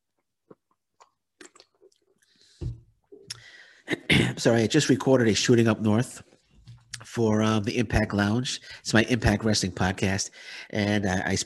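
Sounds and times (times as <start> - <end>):
wet mouth clicks while sipping water: 0.5 - 2.3
person swallowing water: 0.5 - 3.4
speech: 3.9 - 6.3, 7.2 - 11.4.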